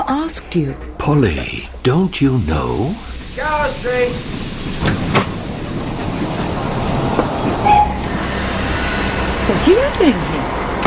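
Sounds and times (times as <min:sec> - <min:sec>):
underground train rumbling: 0:00.0 - 0:10.8
underground train wheels clacking on rails: 0:00.0 - 0:10.8
speech: 0:00.1 - 0:05.3, 0:09.5 - 0:10.6
metallic squeal of underground train: 0:06.1 - 0:09.9.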